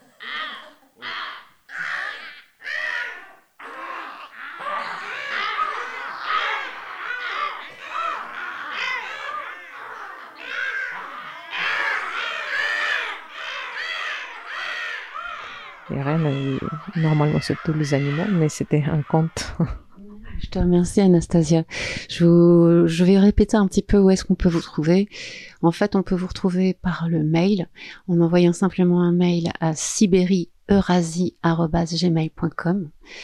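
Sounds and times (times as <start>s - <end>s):
two crows cawing back and forth: 0.0s - 19.6s
speech: 16.2s - 19.8s, 20.5s - 33.2s.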